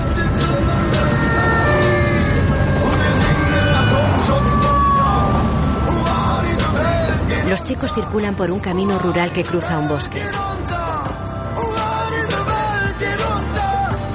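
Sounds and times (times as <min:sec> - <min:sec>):
police patrol car sirens wailing: 0:00.0 - 0:10.3
roar of patrol car engines and road noise: 0:00.0 - 0:14.1
speech: 0:07.7 - 0:10.8.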